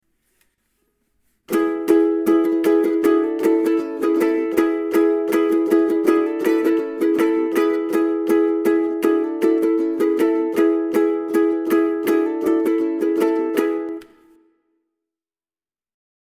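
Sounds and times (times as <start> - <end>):
ukulele riff: 1.5 - 14.4.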